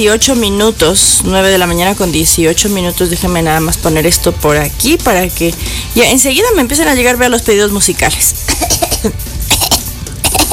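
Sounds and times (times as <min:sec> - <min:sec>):
speech: 0:00.0 - 0:10.4
person coughing harshly: 0:08.4 - 0:10.5.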